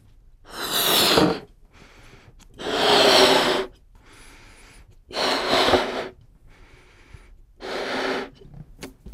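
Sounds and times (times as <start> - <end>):
person blowing up a balloon by mouth: 0.5 - 1.5, 2.6 - 3.8, 5.1 - 6.2, 7.6 - 8.4
person inhaling: 0.5 - 8.4.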